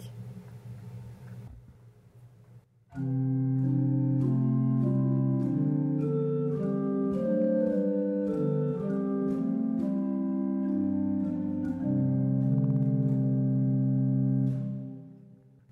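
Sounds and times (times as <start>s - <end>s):
pipe organ playing chordal passage on main manual: 3.0s - 15.7s.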